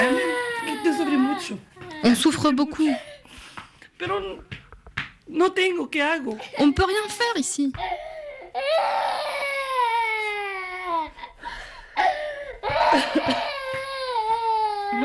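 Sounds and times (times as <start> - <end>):
girl crying in loud drawn-out sobbing wails: 0.0 - 3.3, 7.8 - 11.4, 12.0 - 15.0
speech: 1.5 - 3.1, 4.0 - 4.6, 5.3 - 9.3, 12.9 - 13.5
girl gasping breaths while crying: 7.8 - 8.6, 11.4 - 13.2.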